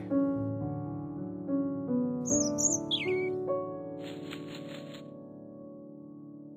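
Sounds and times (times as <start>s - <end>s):
soft sustained music: 0.0s - 6.5s
bird chirping in a park: 2.3s - 3.4s
bird wings fluttering as a bird flies away: 4.0s - 5.0s.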